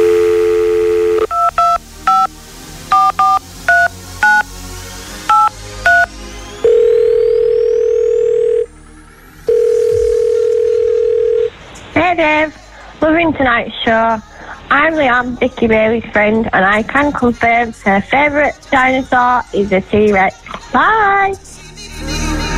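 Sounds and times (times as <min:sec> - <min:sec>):
telephone dial tone: 0:00.0 - 0:02.3, 0:05.3 - 0:06.1, 0:06.7 - 0:08.7, 0:09.5 - 0:11.5
telephone touch-tone dialing beeps: 0:00.0 - 0:02.3, 0:02.9 - 0:04.5, 0:05.3 - 0:08.7, 0:09.5 - 0:11.5
speech: 0:12.2 - 0:21.6.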